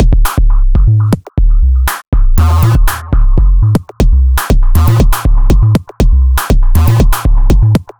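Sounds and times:
modular electronica beats: 0.0s - 7.9s.

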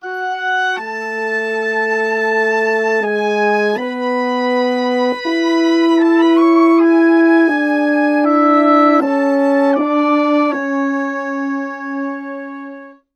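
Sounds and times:
orchestral brass and woodwind arrangement in F# minor: 0.0s - 13.1s.

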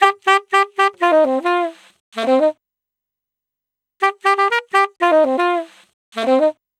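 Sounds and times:
saxophone playing in E flat: 0.0s - 2.6s, 4.0s - 6.6s.

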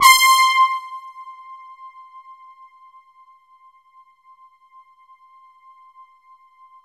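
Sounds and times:
poly brass from a JV-1080 synthesizer: 0.0s - 2.0s.

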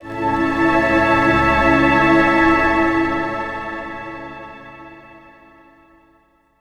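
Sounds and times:
orchestral pads: 0.0s - 5.9s.

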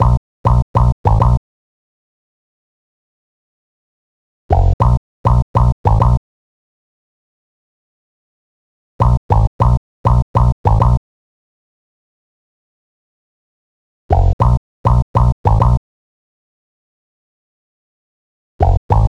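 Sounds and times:
rubber bass: 0.0s - 1.4s, 4.5s - 6.2s, 9.0s - 11.0s, 14.1s - 15.8s, 18.6s - 19.1s.

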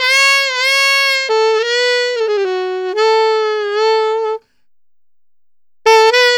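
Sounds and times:
traditional jazz alto saxophone solo: 0.0s - 4.5s, 5.9s - 6.3s.

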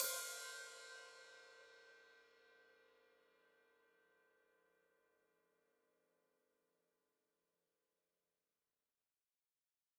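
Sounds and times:
open hi-hat cymbal: 0.0s - 1.1s.

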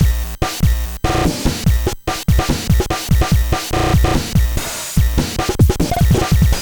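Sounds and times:
8-bit NES chiptune IDM drum loop: 0.0s - 6.6s.

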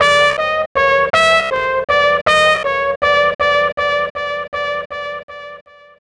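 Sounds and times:
trumpet with echo: 0.0s - 3.8s.

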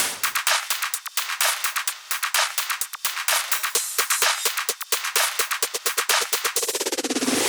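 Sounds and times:
drum loop without bass drum: 0.0s - 7.4s.

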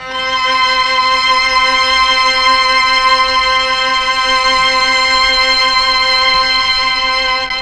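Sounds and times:
mellotron strings note C4: 0.0s - 7.6s.

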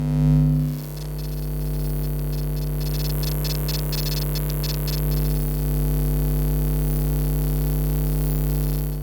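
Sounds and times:
electromagnetic field noise: 0.0s - 9.0s.

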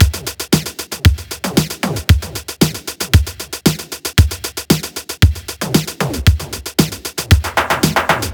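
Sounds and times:
lo-tech beat: 0.0s - 8.3s.

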